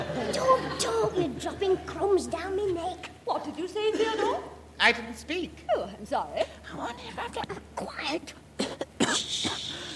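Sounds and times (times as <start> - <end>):
speech: 0.3 - 8.4
person sneezing: 8.6 - 9.9
breathy hissing exhale: 9.6 - 9.9.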